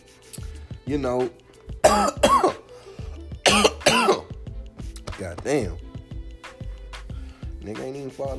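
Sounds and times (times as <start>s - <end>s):
speech: 0.9s - 2.6s, 5.2s - 5.8s, 7.6s - 8.3s
person coughing in hard throaty bursts: 1.8s - 2.7s, 3.4s - 4.4s.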